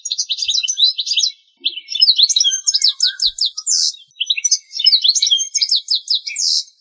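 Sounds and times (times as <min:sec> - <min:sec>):
bird singing trilled phrases: 0:00.0 - 0:06.7.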